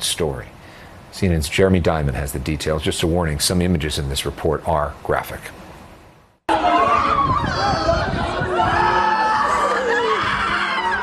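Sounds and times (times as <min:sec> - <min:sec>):
speech: 0:00.2 - 0:00.6, 0:01.2 - 0:05.6
several people shrieking and crying in distress: 0:06.5 - 0:11.0.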